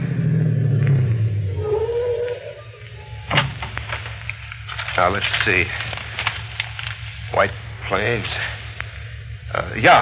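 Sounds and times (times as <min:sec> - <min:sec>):
car engine slowing to a stop and idling: 0:00.0 - 0:10.0
sharp clunk: 0:03.3 - 0:04.2
speech: 0:05.0 - 0:05.8, 0:07.4 - 0:08.6, 0:09.5 - 0:10.0.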